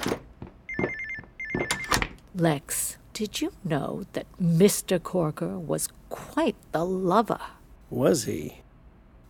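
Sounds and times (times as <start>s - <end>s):
telephone ringing with a rapid electronic warbling trill: 0.7s - 2.0s
speech: 2.4s - 8.6s.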